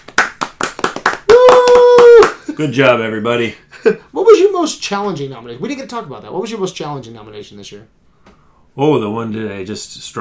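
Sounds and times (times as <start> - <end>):
crisp hand claps: 0.0 - 2.6
long sustained tonal whoop: 1.3 - 2.4
speech: 2.6 - 8.0, 8.8 - 10.1.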